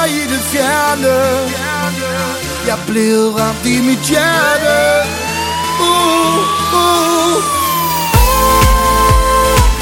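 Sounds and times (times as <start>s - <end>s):
sustained electronic backdrop: 0.1s - 9.7s
speech: 2.7s - 5.3s
emergency vehicle siren wailing: 4.3s - 9.7s
heavy thumping beat: 5.7s - 9.7s.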